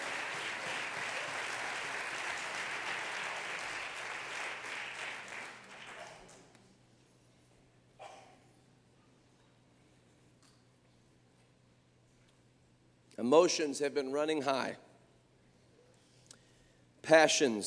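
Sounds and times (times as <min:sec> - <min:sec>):
large crowd clapping in a roomy space: 0:00.0 - 0:06.6
speech: 0:13.2 - 0:14.8, 0:17.1 - 0:17.6.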